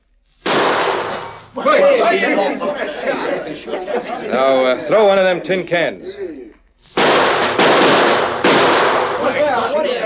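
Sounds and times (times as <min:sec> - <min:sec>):
gunshot fired at a bottle tossed into the air: 0:00.4 - 0:01.4, 0:06.9 - 0:09.4
speech: 0:01.6 - 0:06.4
laughter: 0:01.6 - 0:06.6.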